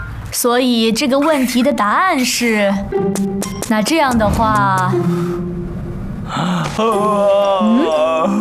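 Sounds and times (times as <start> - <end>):
speech: 0.4 - 5.5, 6.3 - 8.4
person yawning in a classroom: 6.3 - 8.4.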